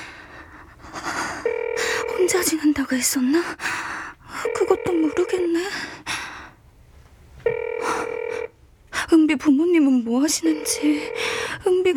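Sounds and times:
phone ringback tone: 1.5 - 2.5, 4.4 - 5.6, 7.5 - 8.5, 10.5 - 11.5
speech: 2.3 - 3.9, 4.5 - 6.0, 9.2 - 11.9.

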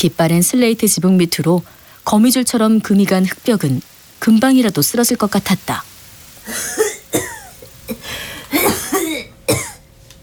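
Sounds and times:
speech: 0.0 - 7.3
quiet breathing: 1.6 - 2.1, 7.9 - 8.6
person coughing harshly: 6.5 - 9.8.

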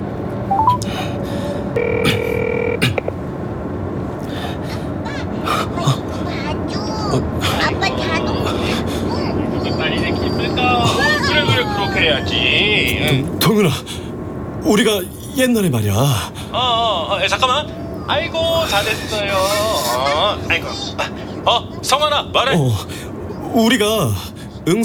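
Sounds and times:
continuous noise: 0.0 - 24.8
telephone dialing tones through a car navigation voice system: 0.5 - 0.9, 1.8 - 3.2
speech: 1.8 - 2.5, 14.7 - 24.8
laughter: 4.2 - 13.8, 16.6 - 22.8
voices and babble: 4.2 - 24.8.

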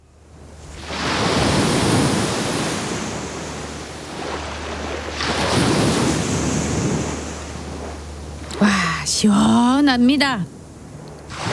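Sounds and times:
ocean waves breaking on shore: 0.0 - 11.5
speech: 8.6 - 10.6.

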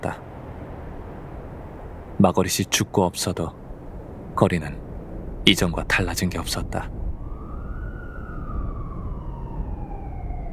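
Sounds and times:
dense rumble of traffic noise: 0.0 - 10.5
speech: 2.2 - 3.6, 4.4 - 4.8, 5.4 - 7.0
siren wailing on a street: 7.0 - 10.5.

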